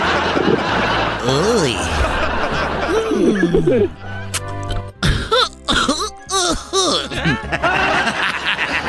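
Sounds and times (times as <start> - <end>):
laughter: 0.0 - 4.0, 5.9 - 8.8
person snickering and chuckling: 1.2 - 3.9, 5.0 - 7.6
speech: 3.5 - 4.1
person in a dinosaur mascot costume coughing after smoking marijuana: 5.0 - 7.5.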